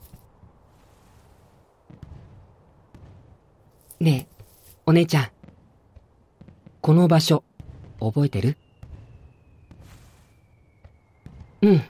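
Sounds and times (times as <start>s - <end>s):
fireworks thudding and crackling in the distance: 0.0s - 11.8s
sharp fireworks pops: 1.1s - 7.0s, 7.6s - 8.0s, 8.7s - 11.6s
speech: 4.0s - 4.3s, 4.9s - 5.4s, 6.9s - 8.6s, 11.7s - 11.8s.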